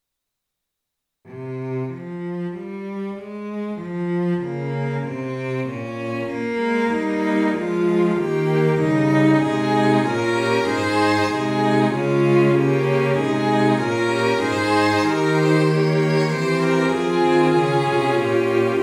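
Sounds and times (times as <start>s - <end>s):
bassoon: 1.3s - 18.8s
string section: 1.3s - 18.8s
English horn: 7.6s - 18.8s
flutes: 9.2s - 18.8s.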